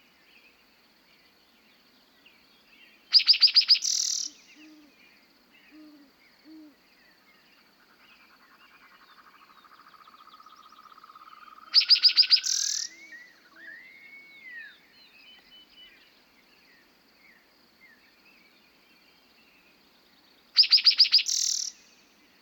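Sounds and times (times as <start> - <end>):
faint spring bird chirps and rising whistles on a prairie: 3.1 - 7.5, 9.1 - 18.6, 20.6 - 22.4.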